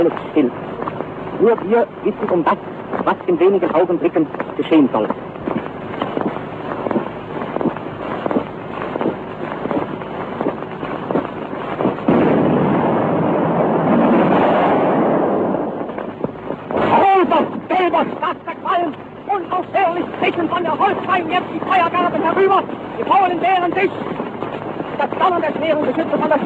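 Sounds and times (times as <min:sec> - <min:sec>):
speech: 0:00.0 - 0:05.3
noise of an old recording: 0:00.0 - 0:26.4
battleship gunfire salvos: 0:12.0 - 0:16.0.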